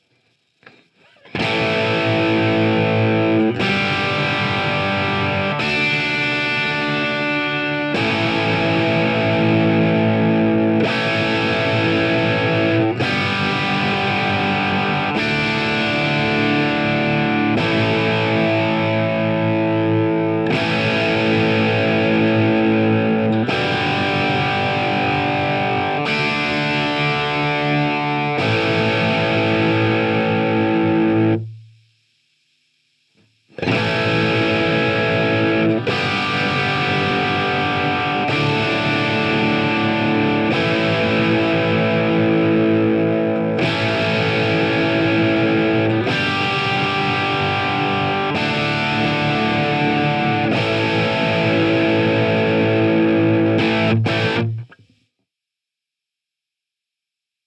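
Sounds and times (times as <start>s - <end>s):
guitar insert: 0.0s - 31.9s, 33.1s - 55.0s.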